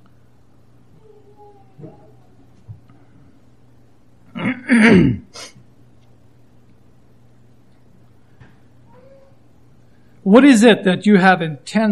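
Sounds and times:
speech: 1.4s - 2.1s, 4.7s - 5.5s, 10.3s - 11.9s
loud rasping throat clearing: 4.3s - 5.6s.

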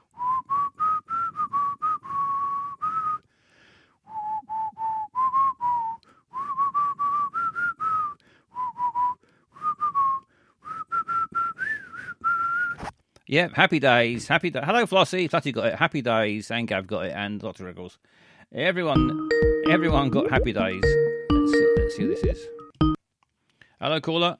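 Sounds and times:
person whistling a TV theme tune: 0.1s - 3.2s, 4.1s - 12.8s, 19.0s - 22.8s
speech: 13.3s - 22.6s, 23.8s - 24.3s.

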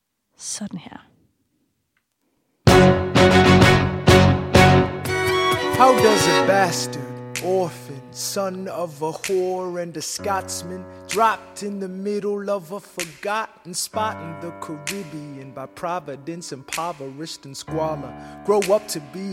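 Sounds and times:
speech: 0.4s - 1.1s, 5.8s - 19.3s
musical theatre song recording: 2.7s - 19.3s
man singing rhythmic lines: 4.9s - 19.3s
punchy rhythmic snaps: 7.3s - 14.0s, 14.6s - 17.7s, 18.5s - 19.3s.

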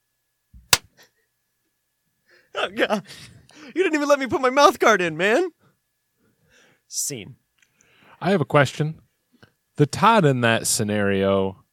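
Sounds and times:
slap to the face: 0.7s - 0.9s
speech: 2.6s - 5.6s, 6.9s - 7.4s, 8.2s - 9.0s, 9.8s - 11.6s.

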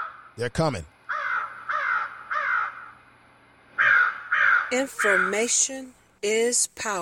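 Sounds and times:
crows cawing: 0.0s - 0.4s, 1.1s - 3.1s, 3.8s - 5.9s
speech: 0.4s - 0.9s, 4.7s - 7.0s.

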